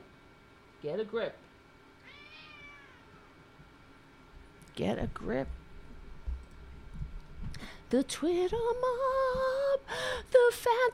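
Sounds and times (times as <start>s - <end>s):
speech: 0.8s - 1.5s, 4.8s - 5.6s, 7.6s - 10.9s
cat meowing: 2.0s - 3.3s.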